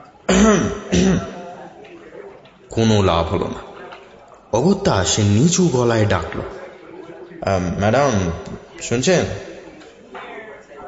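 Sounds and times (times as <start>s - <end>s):
man clearing his throat: 0.3s - 1.6s
speech: 2.8s - 3.7s, 4.5s - 6.6s, 7.4s - 9.5s.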